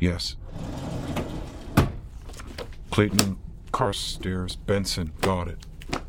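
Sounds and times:
speech: 0.0s - 0.5s, 3.0s - 6.0s
steady low rumble: 0.1s - 6.0s
filing cabinet drawer in a wall bank of filing cabinets sliding open: 0.5s - 2.5s.

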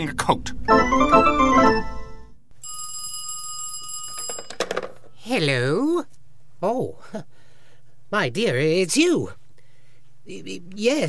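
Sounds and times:
speech: 0.0s - 1.8s, 5.3s - 7.4s, 8.1s - 9.4s, 10.3s - 11.0s
telephone ringing on the line during an outgoing call: 2.6s - 5.0s.

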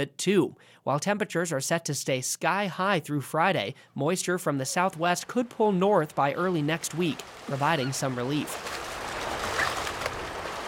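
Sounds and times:
speech: 0.0s - 8.9s
small river water splashes: 4.7s - 10.6s
river water rushing over rocks: 7.2s - 10.6s.

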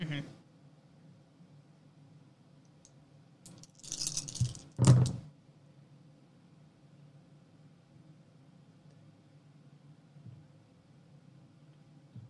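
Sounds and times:
low room hum: 0.0s - 12.2s
dice scooped up and rattled: 3.5s - 5.2s.

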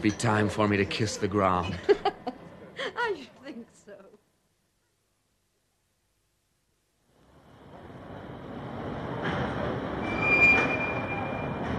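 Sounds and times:
speech: 0.0s - 2.0s
laughter: 1.5s - 3.0s
train rumbling in at the station: 7.5s - 11.7s
thin high metallic squeal: 10.0s - 11.7s.

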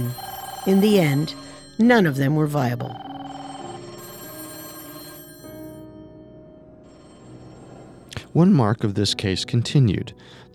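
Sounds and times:
speech: 0.0s - 3.0s, 8.4s - 10.5s
old-fashioned telephone bells ringing at a police department: 0.0s - 5.8s.

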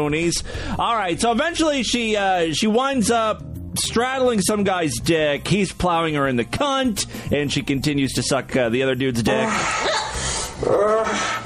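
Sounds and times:
speech: 0.0s - 11.4s
raspy panting noise: 9.3s - 11.4s
woman imitating dog barking with bark-like yelps: 9.6s - 10.2s.

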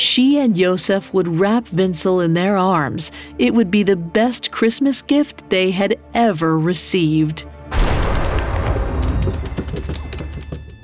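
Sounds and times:
speech: 0.1s - 7.8s
heavy booming thud with low rumble from upstairs: 7.7s - 9.7s.

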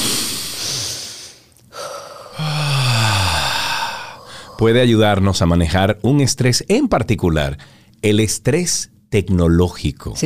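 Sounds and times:
deep breath in and out: 0.0s - 4.8s
speech: 4.6s - 10.2s.

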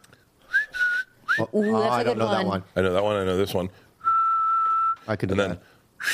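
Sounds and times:
person whistling with mouth: 0.5s - 1.8s, 4.0s - 5.1s
speech: 1.4s - 3.8s, 5.1s - 6.1s.

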